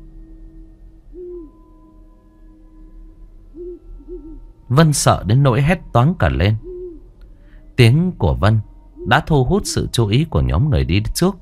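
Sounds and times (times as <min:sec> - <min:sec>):
faintly humming background: 0:00.0 - 0:11.4
owl hooting in a forest: 0:01.1 - 0:01.9, 0:03.5 - 0:04.5, 0:06.4 - 0:07.2, 0:08.4 - 0:10.1
speech: 0:04.7 - 0:06.7, 0:07.8 - 0:11.4.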